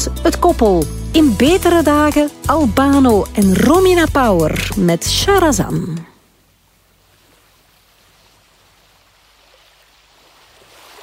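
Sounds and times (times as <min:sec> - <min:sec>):
speech: 0:00.2 - 0:06.1
rushing water with waves washing in: 0:06.2 - 0:11.0.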